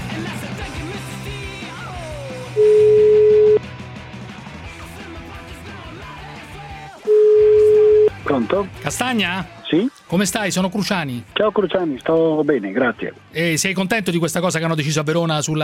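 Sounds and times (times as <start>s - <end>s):
busy music: 0.0s - 15.6s
telephone ringback beeps from an outgoing phone call: 2.6s - 3.6s, 7.1s - 8.2s
speech: 8.4s - 15.6s.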